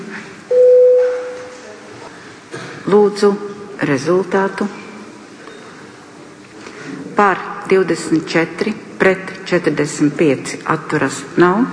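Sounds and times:
electronic bell tone in a parliament chamber before a vote: 0.5 - 1.6
speech: 2.9 - 4.8, 7.2 - 11.7.

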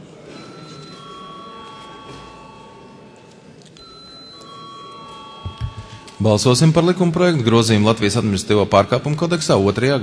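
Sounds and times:
electronic voting call bell chiming in the Latvian parliament: 0.4 - 7.8
speech: 6.2 - 10.0.

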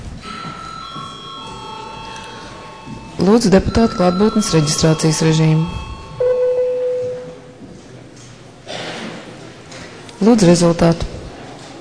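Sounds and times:
bell ringing in a parliament chamber as a signal: 0.2 - 7.6
speech: 3.2 - 5.8, 10.2 - 11.1.

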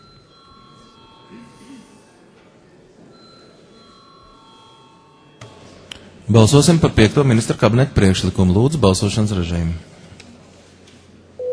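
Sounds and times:
electric bell ringing in a parliament chamber calling deputies to vote: 0.0 - 1.6, 3.1 - 5.4
movement in a parliament chamber: 0.0 - 11.4
murmur of chatter: 0.0 - 11.4
speech: 6.3 - 9.9.

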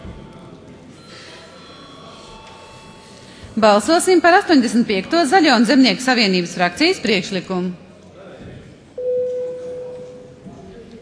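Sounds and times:
murmur of voices: 0.0 - 11.0
speech: 3.6 - 7.8
parliamentary voting bell electronic tone: 9.0 - 10.3.

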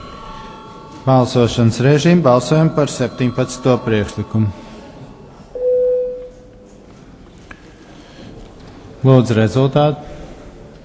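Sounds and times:
bell signal calling a parliamentary vote: 0.0 - 6.8
speech: 1.0 - 4.6, 9.0 - 10.1.

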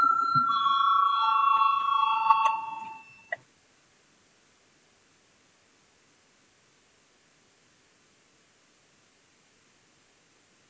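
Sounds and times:
electric voting bell ringing in parliament: 0.0 - 3.3.

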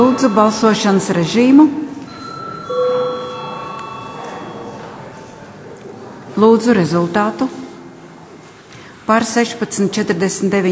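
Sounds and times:
speech: 0.0 - 1.9, 6.4 - 7.6, 9.1 - 10.6
parliament voting bell ringing before a vote: 0.0 - 5.7
faint murmur: 0.0 - 9.1.

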